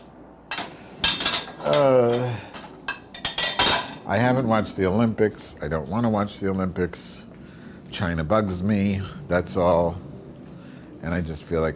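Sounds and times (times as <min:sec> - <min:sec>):
dishes and cutlery clattering while being put away: 0:00.5 - 0:04.1
hum of voice: 0:01.6 - 0:02.5
speech: 0:01.6 - 0:02.5, 0:04.1 - 0:07.3, 0:07.9 - 0:10.1, 0:11.0 - 0:11.7.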